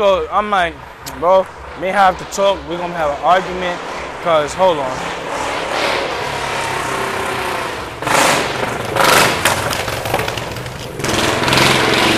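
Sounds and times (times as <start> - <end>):
speech: 0.0 - 5.2
motorcycle engine passing by: 0.4 - 12.1.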